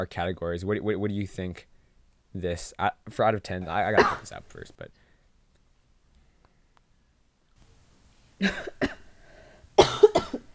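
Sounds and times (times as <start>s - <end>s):
speech: 0.0s - 1.7s, 2.3s - 5.0s, 8.4s - 9.0s
dry raspy harsh coughing: 3.6s - 4.7s, 7.7s - 10.5s.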